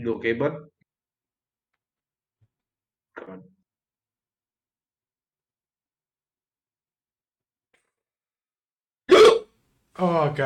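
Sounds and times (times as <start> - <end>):
speech: 0.0 - 0.8, 3.2 - 3.5, 10.0 - 10.4
sharp hiccup: 9.1 - 9.5.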